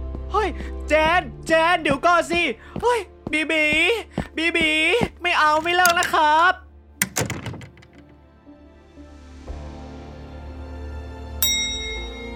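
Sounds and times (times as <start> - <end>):
speech: 0.4 - 6.6
dull thump: 7.0 - 8.1
sharp knocking thuds: 7.0 - 8.1
doorbell chiming: 11.4 - 12.3.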